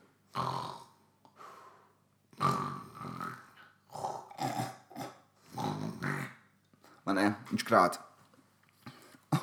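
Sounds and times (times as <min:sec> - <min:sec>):
voice imitating a man asleep in a cinema seat snoring: 0:00.3 - 0:01.0, 0:02.3 - 0:06.4
speech: 0:07.1 - 0:08.1.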